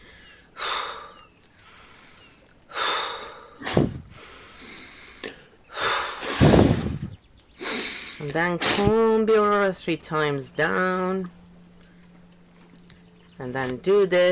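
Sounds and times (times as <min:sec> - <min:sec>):
fast forceful breaths during a guided tapping and breathing exercise: 0:00.0 - 0:09.0
speech: 0:08.3 - 0:11.4, 0:13.4 - 0:14.3.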